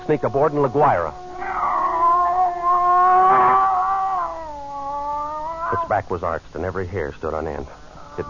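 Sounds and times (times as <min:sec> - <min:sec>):
speech: 0:00.1 - 0:01.6, 0:05.7 - 0:08.2
scrawny cat yowling: 0:00.2 - 0:06.0, 0:08.0 - 0:08.2.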